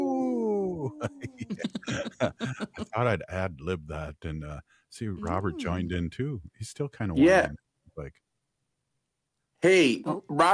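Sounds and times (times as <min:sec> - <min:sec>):
person imitating a wolf howl: 0:00.0 - 0:02.6
laughter: 0:00.8 - 0:03.5
speech: 0:01.0 - 0:08.3, 0:09.6 - 0:10.5.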